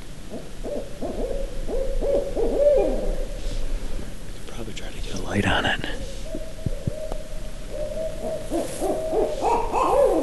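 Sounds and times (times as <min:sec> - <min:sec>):
owl hooting: 0:00.2 - 0:03.7, 0:05.9 - 0:10.2.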